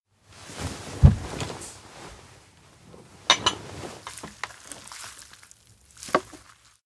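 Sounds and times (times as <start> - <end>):
rice being served: 3.2 - 6.8.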